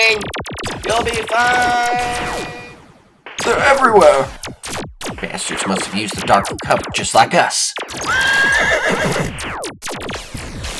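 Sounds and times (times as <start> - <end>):
speech: 0.0 - 2.6, 3.5 - 10.0
horse whinnying: 8.0 - 9.4.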